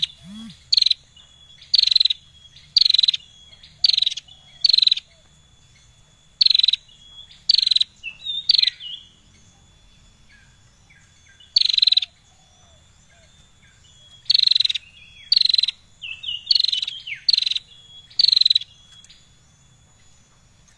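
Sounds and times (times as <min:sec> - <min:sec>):
Prinia singing buzzy rapid-pulse bursts and twittering notes: 0:00.0 - 0:01.2
thin steady high tone: 0:00.0 - 0:20.7.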